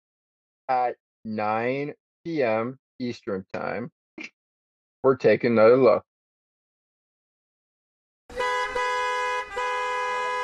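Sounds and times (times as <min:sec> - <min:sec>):
speech: 0:00.7 - 0:04.4, 0:05.0 - 0:06.1
car horns honking in busy traffic: 0:08.3 - 0:10.4.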